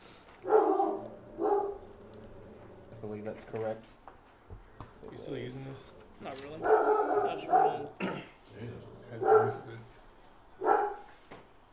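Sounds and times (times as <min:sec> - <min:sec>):
dog barking: 0:00.4 - 0:02.0, 0:06.6 - 0:08.0, 0:09.1 - 0:09.8, 0:10.6 - 0:11.2
speech: 0:03.2 - 0:04.0, 0:05.0 - 0:09.9.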